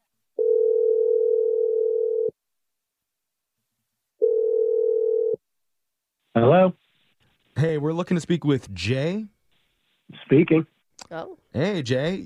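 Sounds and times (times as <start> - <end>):
long steady telephone tones while calling a number: 0.4 - 2.4, 4.2 - 5.5
speech: 8.0 - 9.3, 10.3 - 12.2.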